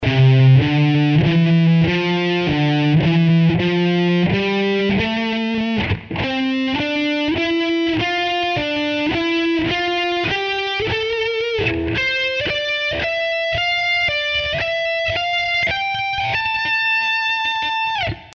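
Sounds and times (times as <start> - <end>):
guitar playing slow scale patterns: 0.0 - 18.3.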